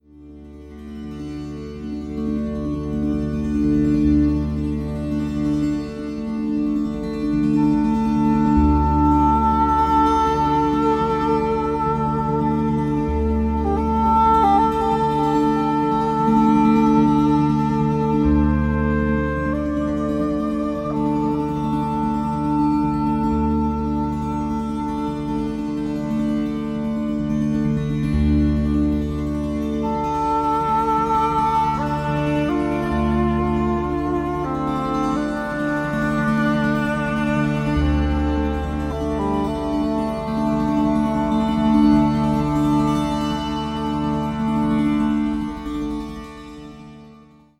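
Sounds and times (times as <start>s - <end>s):
body tambura: 0.3s - 46.9s
English horn: 2.6s - 47.5s.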